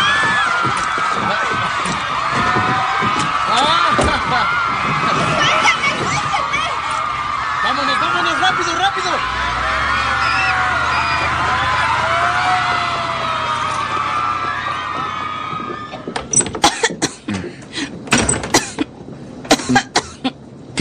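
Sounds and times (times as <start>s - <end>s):
dense noisy sound: 0.0s - 20.7s
feverish unwell person coughing harshly on a cold day: 16.6s - 17.5s, 18.5s - 18.9s, 19.5s - 20.3s.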